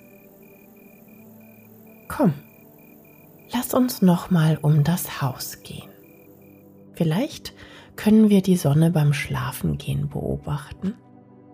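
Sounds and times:
cricket chirping among lavender bushes in the evening sun: 0.0 - 6.9
speech: 2.1 - 2.5, 3.7 - 5.9, 7.0 - 11.0.

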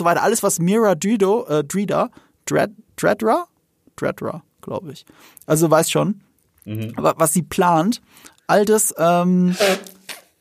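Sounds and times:
speech: 0.0 - 10.0
person sneezing: 9.5 - 10.1.

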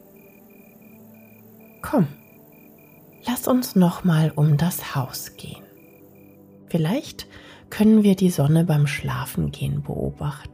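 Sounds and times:
cricket chirping: 0.0 - 7.1
speech: 1.8 - 2.2, 3.4 - 5.6, 6.7 - 10.5.

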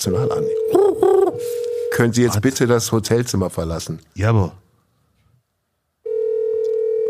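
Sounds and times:
telephone ringing with an incoming call in a hotel room: 0.0 - 2.2, 6.1 - 7.0
speech: 0.0 - 4.6.

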